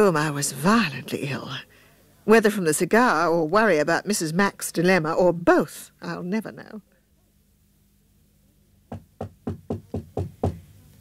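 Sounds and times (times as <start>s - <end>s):
speech: 0.0s - 1.7s, 2.3s - 6.9s
soft knocking on a door: 8.9s - 10.6s.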